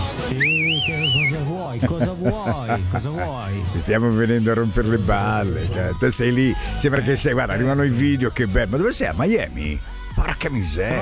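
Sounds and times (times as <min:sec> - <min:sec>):
person whistling a short wavering call to call someone: 0:00.3 - 0:01.5
speech: 0:00.3 - 0:11.0
laughter: 0:00.9 - 0:05.8.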